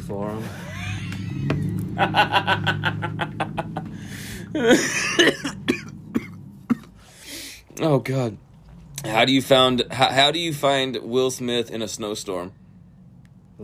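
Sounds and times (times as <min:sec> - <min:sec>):
low hum: 0:00.0 - 0:13.6
speech: 0:00.1 - 0:00.7, 0:01.4 - 0:03.4, 0:04.6 - 0:05.4, 0:07.8 - 0:12.6
laughter: 0:00.5 - 0:03.9, 0:04.5 - 0:05.3
rapid rhythmic throaty pulses: 0:02.2 - 0:07.5
sharp coughs: 0:04.6 - 0:07.0.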